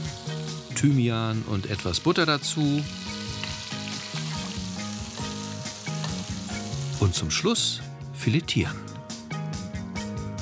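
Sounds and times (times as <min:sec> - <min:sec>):
floured sole sizzling as it fries in rapeseed oil: 0:00.0 - 0:07.2
speech: 0:00.8 - 0:03.1, 0:07.0 - 0:08.9.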